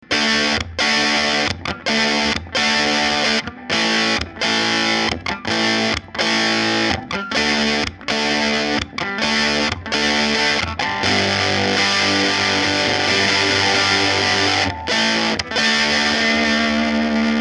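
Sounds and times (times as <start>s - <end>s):
guitar through Ibanez distortion channel: 0.0s - 17.4s.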